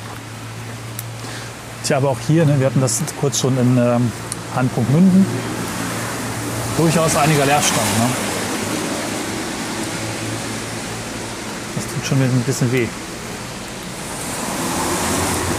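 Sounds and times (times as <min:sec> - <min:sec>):
steady rain falling outdoors: 0:00.0 - 0:15.5
speech: 0:01.9 - 0:05.6, 0:06.8 - 0:08.3, 0:12.1 - 0:13.0.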